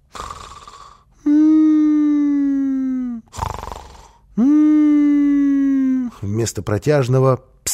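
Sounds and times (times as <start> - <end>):
voice imitating a sleeping man's whimpering snoring: 0.0 - 6.2
speech: 4.4 - 4.6, 6.2 - 7.5.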